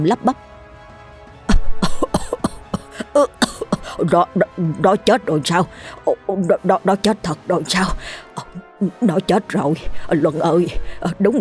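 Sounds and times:
speech: 0:00.0 - 0:00.5, 0:03.2 - 0:03.4, 0:04.0 - 0:11.3
old man coughing up blood clots: 0:01.5 - 0:04.2.

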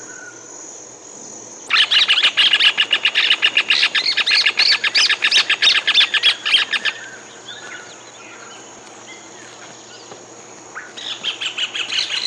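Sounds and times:
bird song of varied chirps and trills: 0:01.7 - 0:10.1, 0:10.7 - 0:12.2.

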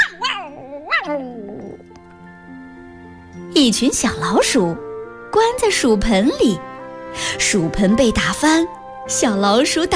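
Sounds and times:
shaggy dog yelping in pain as tail hair is pulled: 0:00.0 - 0:01.9
speech: 0:03.6 - 0:09.9.

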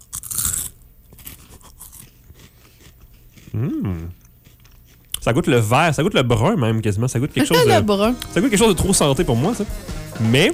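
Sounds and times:
chewing a pea: 0:00.0 - 0:05.3
crunch of someone biting into a pea: 0:00.0 - 0:05.3
speech: 0:03.5 - 0:04.2, 0:05.3 - 0:10.5.

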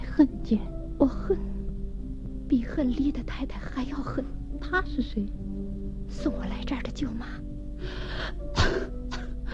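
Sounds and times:
speech: 0:00.2 - 0:01.6, 0:02.5 - 0:08.9
woman coughing: 0:08.5 - 0:09.4.

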